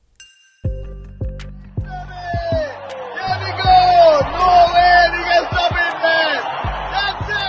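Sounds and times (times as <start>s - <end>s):
crowd of protesters shouting and whooping: 2.4s - 7.4s.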